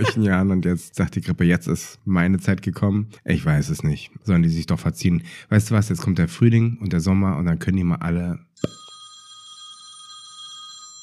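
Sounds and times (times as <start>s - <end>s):
speech: 0.0s - 8.8s
telephone ringing with a steady electronic trill: 8.6s - 11.0s.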